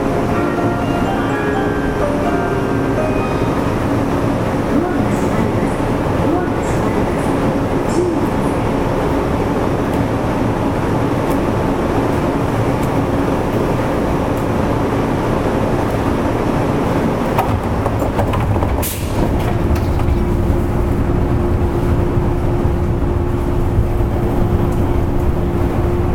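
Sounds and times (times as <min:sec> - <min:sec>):
commuter train running on a city loop line: 0:00.0 - 0:26.1
low commuter train motor hum: 0:16.8 - 0:26.1
sharp train clatter: 0:17.3 - 0:20.8.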